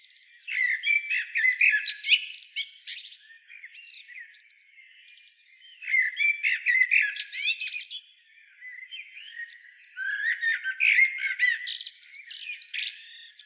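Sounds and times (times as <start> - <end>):
common blackbird chattering and whistling, Turdus merula: 0.5 - 3.2, 5.9 - 8.0, 10.0 - 13.2.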